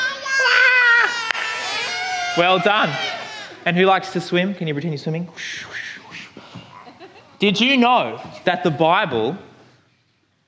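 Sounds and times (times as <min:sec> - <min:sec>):
several young voices imitating a baby crying: 0:00.0 - 0:03.7
speech: 0:02.4 - 0:06.2, 0:07.4 - 0:09.5.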